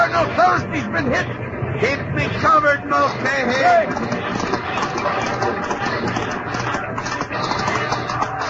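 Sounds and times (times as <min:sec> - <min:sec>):
speech: 0:00.2 - 0:06.4
cavalry horses galloping in a charge: 0:02.6 - 0:08.4.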